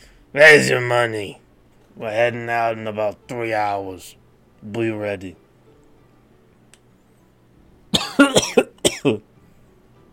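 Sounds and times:
speech: 0.3 - 1.4, 2.0 - 5.4, 8.2 - 9.3
person coughing: 8.0 - 9.2.

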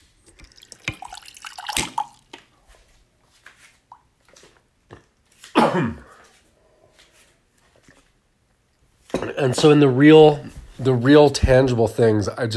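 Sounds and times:
splashy bursts of water: 0.2 - 2.3
clicks and drips of someone getting a drink of water: 0.2 - 2.5
person making a breathy throat-clearing noise: 5.5 - 6.3, 9.1 - 9.6
speech: 5.7 - 6.1, 9.4 - 12.5.

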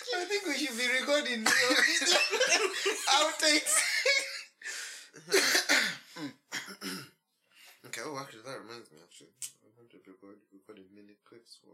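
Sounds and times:
speech: 0.1 - 4.3, 8.3 - 11.7
laughter: 1.4 - 4.6
person gasping between coughs: 4.6 - 5.2
person coughing in harsh bursts: 5.2 - 7.2.

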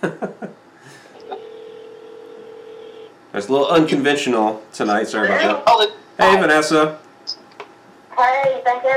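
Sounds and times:
speech: 0.0 - 0.4, 3.4 - 7.4, 8.2 - 8.9
cell phone call ringing tone: 1.2 - 3.1.

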